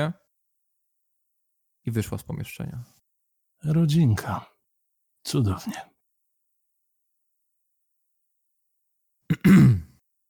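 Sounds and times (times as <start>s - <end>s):
speech: 0.0s - 0.2s, 1.8s - 3.0s, 3.6s - 4.5s, 5.2s - 5.9s, 9.4s - 9.8s
person clearing throat: 9.3s - 10.0s.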